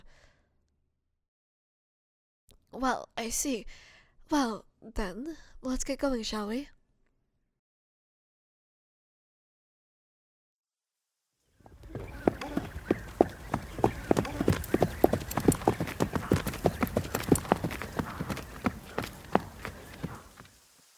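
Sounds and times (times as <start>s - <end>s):
speech: 2.7s - 6.8s
traveling horses' hooves clip-clopping on a hard surface: 11.6s - 20.6s
faint ambience: 11.6s - 20.9s.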